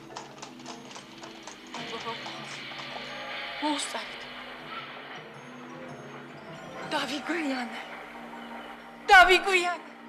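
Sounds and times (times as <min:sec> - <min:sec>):
hooves of a horse-drawn carriage clip-clopping: 0:00.0 - 0:05.4
speech: 0:03.6 - 0:04.2, 0:06.9 - 0:07.9, 0:09.1 - 0:09.9.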